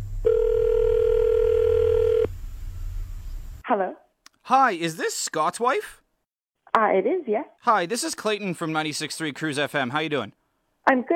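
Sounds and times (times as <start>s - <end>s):
electronic ringback tone of an outgoing phone call: 0.2s - 2.3s
speech: 3.7s - 6.0s, 6.8s - 11.1s.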